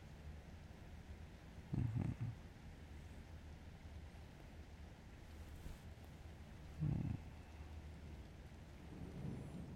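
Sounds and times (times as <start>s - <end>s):
steady rain: 0.0s - 9.7s
distant thunder rumbling: 8.0s - 9.7s.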